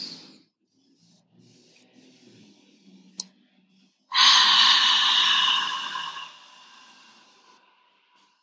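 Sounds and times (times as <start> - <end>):
deep forceful breath during a guided deep-breathing exercise: 4.1 - 8.1.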